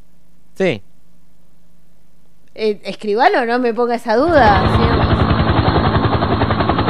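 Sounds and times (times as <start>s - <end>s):
speech: 0.6s - 0.9s, 2.6s - 5.4s
helicopter rotor chopping: 4.3s - 6.8s.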